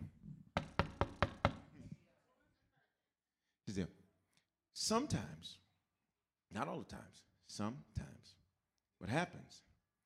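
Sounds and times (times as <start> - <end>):
knocking on a wooden pulpit: 0.6 - 1.7
speech: 3.7 - 4.0, 4.8 - 5.6, 6.5 - 8.4, 9.0 - 9.7.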